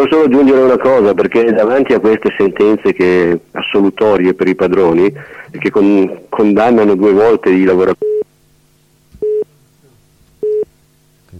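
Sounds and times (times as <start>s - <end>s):
speech: 0.0s - 8.1s
faint low hum: 0.0s - 11.3s
telephone busy tone after a dropped phone line: 8.0s - 8.2s, 9.2s - 9.4s, 10.4s - 10.6s.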